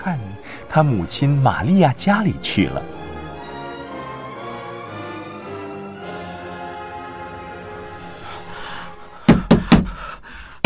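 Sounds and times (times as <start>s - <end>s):
speech: 0.0s - 3.0s
knocking on the door of a house: 9.3s - 10.0s.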